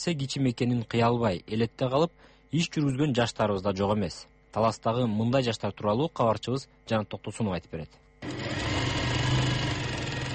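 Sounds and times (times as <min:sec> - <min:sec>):
speech: 0:00.0 - 0:08.7
sewing machine stitching the inner lining of a hat: 0:08.2 - 0:10.3.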